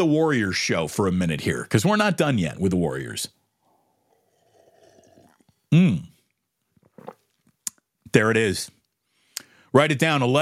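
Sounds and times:
speech: 0.0s - 3.4s, 5.7s - 6.1s, 8.1s - 8.8s, 9.7s - 10.4s
sipping a drink: 3.6s - 7.8s.

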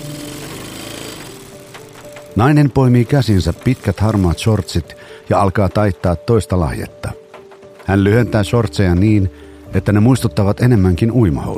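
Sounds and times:
sewing machine stitching fabric at a dining table in rural Pembrokeshire: 0.0s - 8.0s
speech: 2.4s - 7.2s, 7.9s - 11.5s.

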